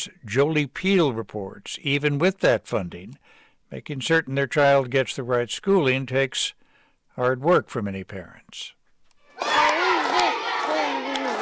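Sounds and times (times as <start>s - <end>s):
speech: 0.0s - 6.6s, 7.2s - 8.8s
crowd chanting at a high school varsity basketball game in Ashland, Nebraska: 9.3s - 11.4s
crowd clapping at a high school varsity basketball game in Ashland, Nebraska: 9.3s - 11.4s.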